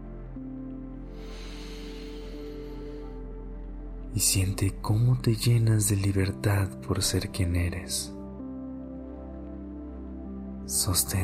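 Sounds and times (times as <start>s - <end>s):
steady low musical drone: 0.0s - 11.2s
deep inhalation during a guided breathing exercise: 1.1s - 3.3s
speech: 4.2s - 8.2s, 10.7s - 11.2s.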